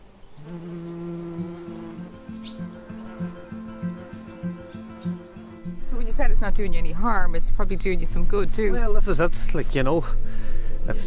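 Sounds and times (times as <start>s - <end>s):
frogs croaking in low pulsing calls: 0.0s - 5.9s
bees buzzing in a steady drone: 0.0s - 7.0s
birds chirping faintly outdoors: 0.0s - 9.2s
speech: 6.4s - 10.3s, 10.9s - 11.0s.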